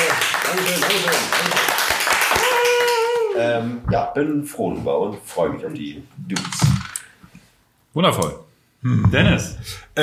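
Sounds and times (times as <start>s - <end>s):
crowd applause with overlapping hand claps: 0.0s - 3.4s
speech: 0.5s - 1.8s, 3.6s - 7.0s, 8.0s - 10.0s.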